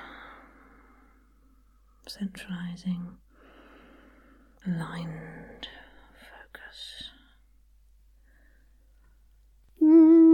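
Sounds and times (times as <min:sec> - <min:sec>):
long soft breath taken as a breathing exercise: 0:00.0 - 0:01.8, 0:03.3 - 0:04.6, 0:08.2 - 0:08.9
speech: 0:02.1 - 0:03.2, 0:04.6 - 0:05.8.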